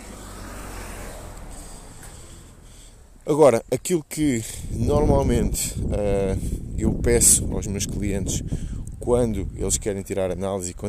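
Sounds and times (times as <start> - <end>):
car driving by outdoors: 0.0 - 3.4
speech: 3.2 - 10.8.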